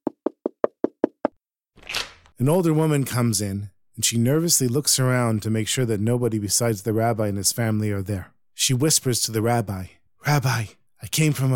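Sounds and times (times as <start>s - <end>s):
knocking on a door: 0.0s - 1.4s
speech: 2.4s - 11.5s.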